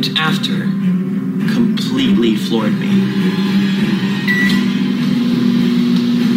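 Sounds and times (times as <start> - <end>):
speech: 0.0 - 0.8, 1.4 - 4.6
microwave oven running with electrical hum: 0.8 - 6.3
faint beep-like tone: 4.2 - 4.9.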